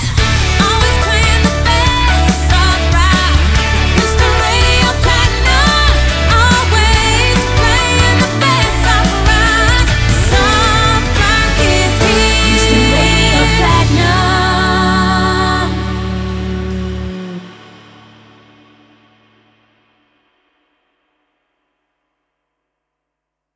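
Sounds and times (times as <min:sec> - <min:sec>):
slogan jingle in D: 0:00.2 - 0:17.4.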